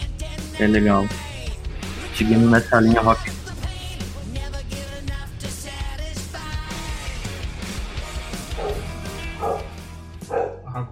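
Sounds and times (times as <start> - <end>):
steady loud music: 0.0 - 10.5
speech: 0.6 - 1.2, 2.2 - 3.4
dog barking: 8.4 - 10.7.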